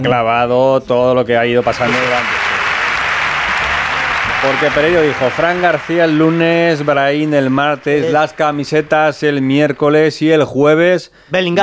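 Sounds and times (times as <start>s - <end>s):
speech: 0.0s - 2.4s, 4.4s - 11.6s
many hands clapping in applause: 1.6s - 10.2s
laughter: 1.7s - 9.7s.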